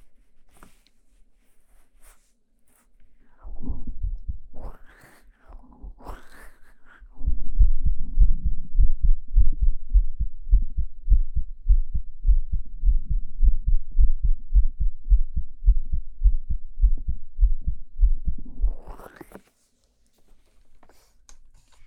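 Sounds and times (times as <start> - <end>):
soft rustling: 0.0 - 4.0, 19.0 - 21.8
rapid heartbeat thumping: 3.5 - 4.9, 7.1 - 19.0.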